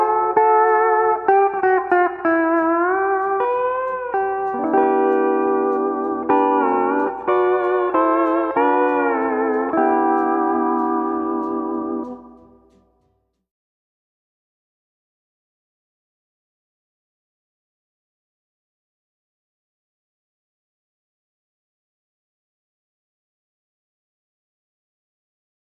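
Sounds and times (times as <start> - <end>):
steel guitar: 0.0 - 12.9.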